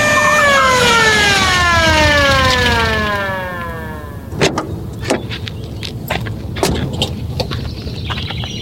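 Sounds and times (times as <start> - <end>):
police car siren winding down: 0.0 - 4.9
sharp clicks and knocks: 4.3 - 7.6.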